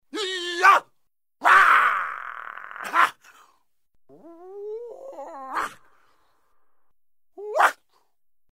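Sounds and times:
kung fu fighter shouting: 0.1s - 2.2s, 7.4s - 7.8s.

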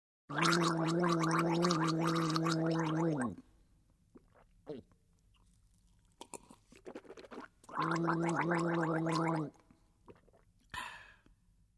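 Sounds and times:
person gargling: 0.3s - 3.4s, 4.7s - 4.9s, 6.8s - 9.6s.

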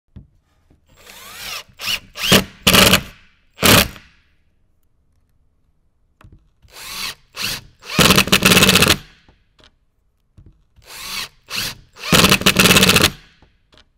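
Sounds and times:
cordless screwdriver: 0.9s - 4.0s, 6.6s - 9.1s, 10.8s - 13.3s.

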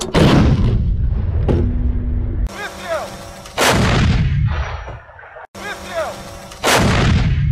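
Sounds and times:
artillery fire: 0.1s - 1.5s, 3.1s - 4.9s, 6.1s - 7.5s.

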